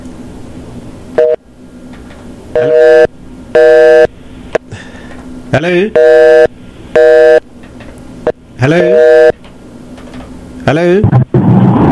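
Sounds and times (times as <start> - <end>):
telephone busy signal with all phone lines engaged: 1.2 - 1.4, 2.6 - 4.1, 6.0 - 7.4, 8.7 - 9.4
speech: 5.5 - 6.5, 8.6 - 9.0, 10.7 - 11.2.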